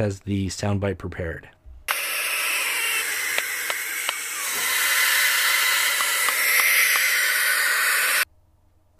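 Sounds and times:
speech: 0.0 - 1.6
Barn Owl screech: 2.3 - 8.2.

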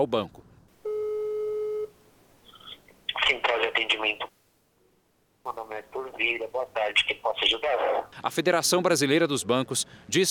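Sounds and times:
speech: 0.0 - 0.4, 3.3 - 4.4, 5.4 - 10.3
telephone ringback tone: 0.9 - 1.9.

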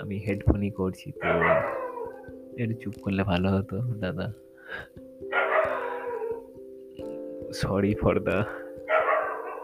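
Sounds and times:
speech: 0.0 - 1.9, 2.6 - 5.0, 7.5 - 8.6
dog barking at night: 1.2 - 2.3, 5.3 - 6.4, 8.9 - 9.6.

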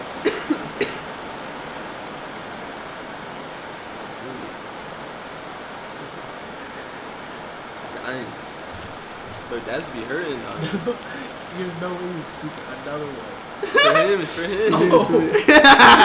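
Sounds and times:
loud hiss of broadband noise: 0.0 - 16.0
quick coughs: 0.3 - 1.1
laughter: 8.7 - 16.0
speech: 9.6 - 16.0.

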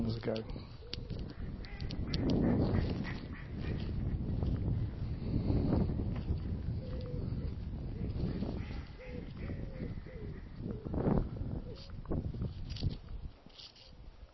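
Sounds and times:
low rumbling windy background: 0.0 - 14.3
speech: 0.1 - 0.8
ducks quacking in a puddle: 1.7 - 4.0, 8.3 - 10.5.

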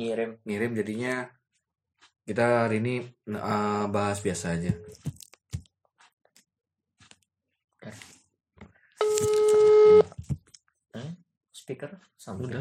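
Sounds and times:
speech: 0.0 - 1.4, 2.0 - 5.2, 7.8 - 8.1, 11.0 - 12.6
telephone tone with a steady layered electronic pitch: 9.0 - 10.1.

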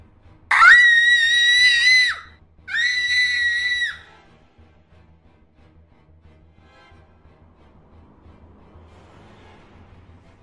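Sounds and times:
woman screaming from upstairs: 0.5 - 4.0.

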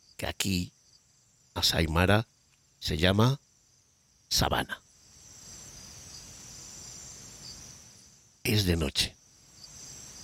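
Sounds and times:
crickets and other insects chorus in night savanna: 0.0 - 10.2
speech: 0.2 - 0.8, 1.6 - 3.4, 4.3 - 4.8, 8.4 - 9.2.

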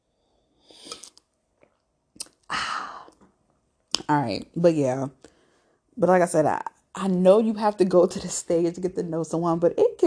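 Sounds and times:
slurping sip of a drink: 0.7 - 1.2
mouth clicks: 0.8 - 1.2, 2.2 - 3.2
swallow: 0.8 - 1.2
speech: 4.1 - 5.2, 6.0 - 10.0.

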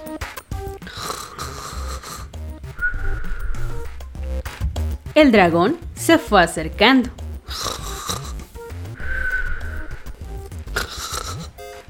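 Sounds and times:
faint music: 0.0 - 11.8
low rumbling snore: 0.8 - 4.3, 7.4 - 11.6
thin steady whistle trailing from a snore: 2.8 - 3.7, 9.0 - 10.0
speech: 5.2 - 7.7.

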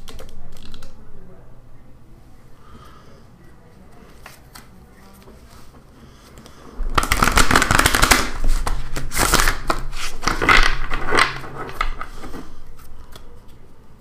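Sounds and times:
Thoth tarot card deck being shuffled: 7.0 - 13.3.

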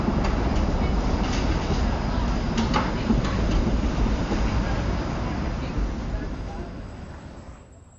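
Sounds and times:
modern streetcar rumbling past a window: 0.0 - 7.9.

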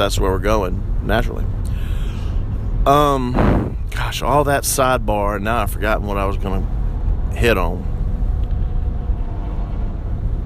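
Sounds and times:
speech: 0.0 - 1.8, 2.9 - 7.9
truck engine rumbling past on a road: 1.7 - 4.3, 6.6 - 10.4.

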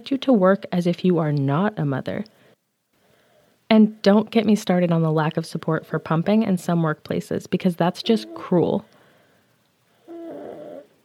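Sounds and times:
speech: 0.0 - 2.4, 3.7 - 8.9
baby boy snoring softly: 8.1 - 8.5, 10.0 - 11.0.

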